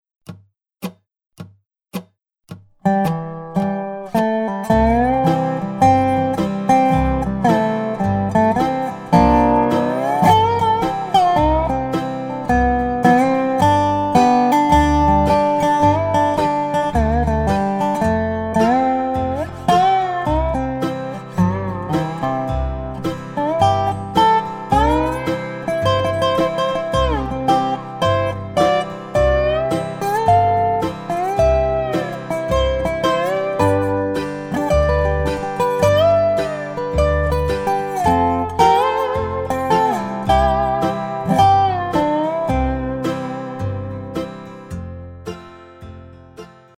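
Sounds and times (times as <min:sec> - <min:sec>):
dobro playing in the key of C: 0:02.8 - 0:46.2
backing track: 0:03.0 - 0:46.6.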